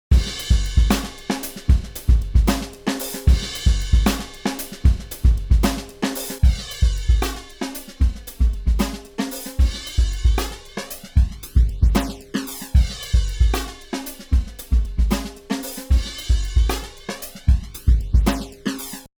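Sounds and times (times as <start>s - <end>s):
jazz drums: 0.1s - 19.1s.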